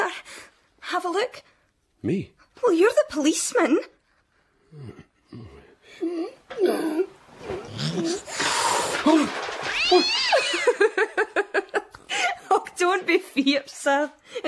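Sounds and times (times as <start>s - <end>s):
speech: 0.9s - 4.0s, 4.7s - 14.4s
cat meowing and caterwauling: 9.6s - 10.6s.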